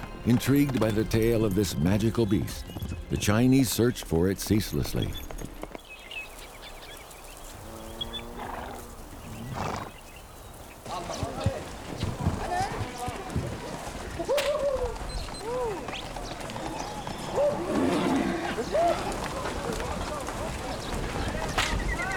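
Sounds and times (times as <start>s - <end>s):
horse hooves clip-clopping over the ground in Jiaosu County China: 0.0s - 22.1s
steady wash of outdoor activity: 0.0s - 22.1s
speech: 0.2s - 5.3s
horse whinnying: 8.0s - 10.0s, 16.7s - 19.0s.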